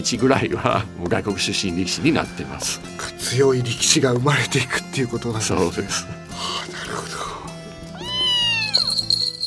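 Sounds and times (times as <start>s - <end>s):
speech: 0.0s - 7.2s
cat meowing: 7.8s - 9.3s.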